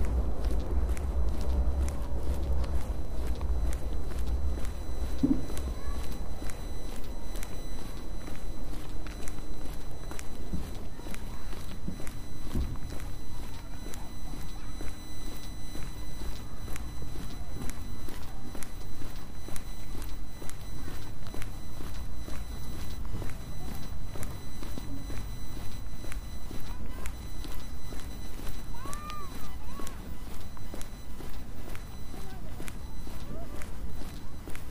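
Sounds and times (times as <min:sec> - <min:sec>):
background rumble: 0:00.0 - 0:07.6
crisp footsteps walking at a steady pace: 0:00.0 - 0:34.6
faint low murmurs of voices: 0:00.0 - 0:34.6.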